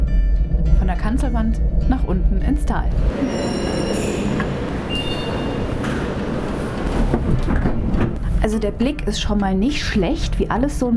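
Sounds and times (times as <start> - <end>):
cable car gondola riding uphill in the Kleinwalsertal, mechanical rumble: 0.0 - 10.8
speech: 1.0 - 3.8, 8.4 - 10.9
thin high-pitched squeals: 3.1 - 6.3.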